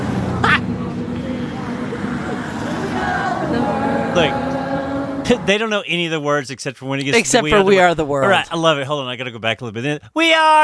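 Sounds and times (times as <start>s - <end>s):
cars passing on a road: 0.0s - 5.7s
faint crowd murmur: 0.4s - 5.5s
speech: 4.2s - 4.4s, 5.3s - 10.6s.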